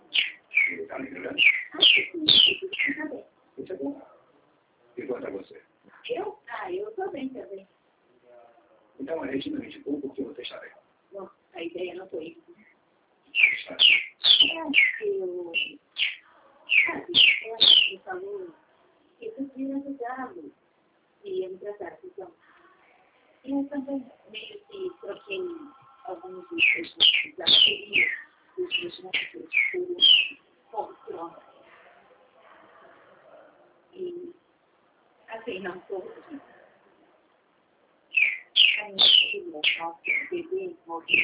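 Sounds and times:
pet bird chirping: 0.0 - 3.9, 11.7 - 18.5, 24.2 - 31.3, 38.1 - 41.2
person talking: 0.0 - 4.2, 5.0 - 7.6, 8.3 - 12.6, 13.4 - 15.8, 16.7 - 18.6, 21.2 - 22.8, 23.5 - 31.8, 33.3 - 34.4, 35.3 - 36.5, 38.7 - 41.2.

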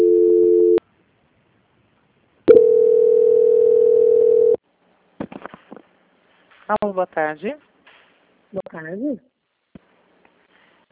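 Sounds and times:
telephone tones while a call is being transferred: 2.5 - 4.6
speech: 6.7 - 7.7, 8.6 - 9.3.

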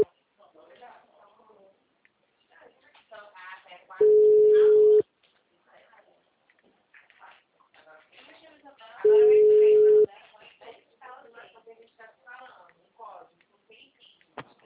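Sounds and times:
person talking: 4.0 - 5.0, 9.0 - 10.1
telephone ringing tone while a call is being placed: 4.0 - 5.0, 9.1 - 10.1.

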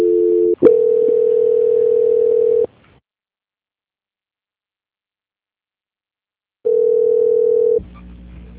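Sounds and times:
telephone line tone during a call transfer: 0.0 - 2.7, 6.7 - 7.8.

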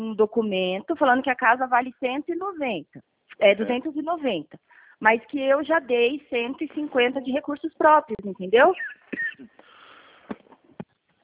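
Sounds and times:
speech: 0.1 - 9.6
person coughing on a phone call: 9.1 - 9.6.

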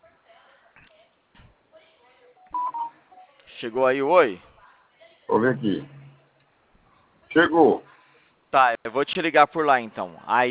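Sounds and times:
two short steady beeps: 2.4 - 3.0, 5.3 - 6.3
mobile phone keypad tones while typing a message: 2.4 - 3.3
speech: 3.6 - 4.5, 5.3 - 6.0, 7.3 - 7.9, 8.5 - 10.4.

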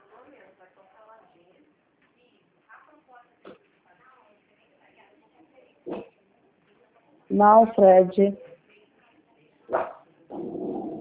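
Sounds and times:
speech: 7.3 - 8.4
dog growling low and steady: 10.3 - 10.9.

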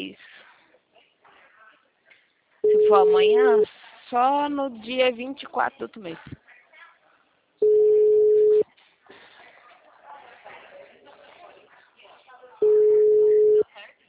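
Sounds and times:
telephone ringback tones on an outgoing call: 2.6 - 3.6, 7.6 - 8.6, 12.6 - 13.6
speech: 2.9 - 6.4.

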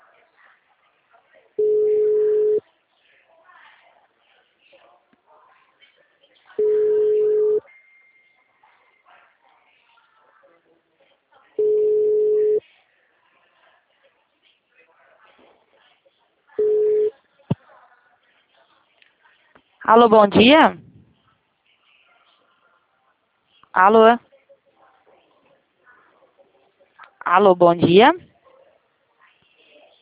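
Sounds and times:
phone ringback tone buzzes: 1.6 - 2.6, 6.6 - 7.7, 11.6 - 12.6, 16.6 - 17.1
speech: 19.9 - 20.8, 23.8 - 24.3, 27.3 - 28.3.

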